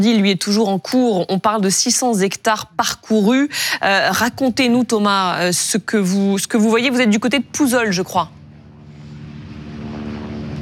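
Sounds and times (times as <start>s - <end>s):
speech: 0.0s - 8.4s
water-bombing firefighting helicopter with 1000-litre capacity flying over a wildfire: 8.3s - 10.6s.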